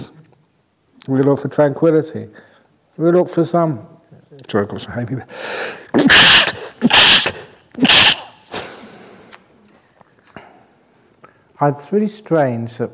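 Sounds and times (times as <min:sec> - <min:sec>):
speech: 0:01.1 - 0:07.1, 0:11.6 - 0:12.9
quiet breathing: 0:05.3 - 0:05.9, 0:08.6 - 0:11.6
voiced intake of breath: 0:05.3 - 0:09.4
Buddhist monk sneezing: 0:05.9 - 0:08.9.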